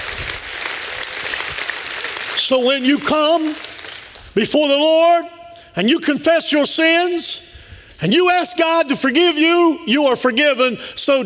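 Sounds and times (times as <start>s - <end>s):
audience applause: 0.0s - 4.4s
speech: 2.4s - 3.7s, 4.4s - 11.2s.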